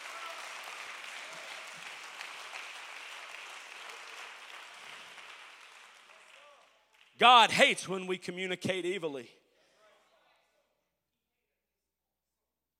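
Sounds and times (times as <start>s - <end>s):
crowd clapping: 0.0s - 8.0s
speech: 7.2s - 9.4s.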